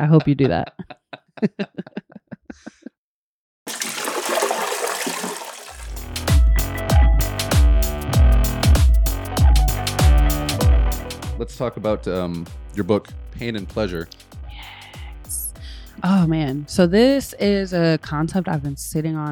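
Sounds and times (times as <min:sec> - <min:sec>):
speech: 0:00.0 - 0:02.7, 0:11.4 - 0:14.3, 0:16.0 - 0:19.3
laughter: 0:00.0 - 0:02.9
toilet flushing with rushing gurgling whoosh: 0:03.7 - 0:06.1
rhythmic music with a heavy beat: 0:05.8 - 0:17.2.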